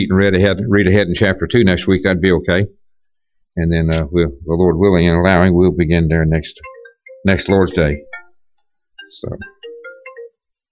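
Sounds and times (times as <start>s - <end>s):
speech: 0.0s - 2.8s, 3.6s - 8.1s, 9.1s - 9.5s
mobile phone ringing with an electronic melody: 6.6s - 10.4s.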